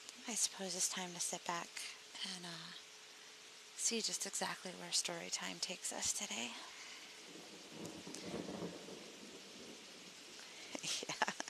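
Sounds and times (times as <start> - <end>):
steady hiss of falling rain: 0.0 - 11.4
speech: 0.3 - 2.8, 3.8 - 8.4
thunder rumbling: 6.7 - 10.8.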